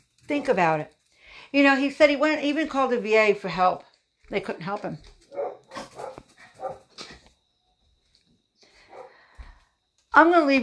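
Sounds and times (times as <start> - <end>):
speech: 0.3 - 5.4, 10.2 - 10.6
dogs barking: 5.3 - 7.0, 8.9 - 9.2.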